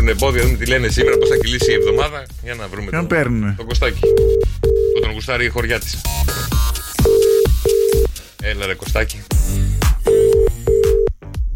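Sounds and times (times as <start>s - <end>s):
speech: 0.0s - 6.7s, 8.5s - 9.6s
telephone ringing unanswered: 1.0s - 2.0s, 4.0s - 5.1s, 7.0s - 8.1s, 10.1s - 11.1s.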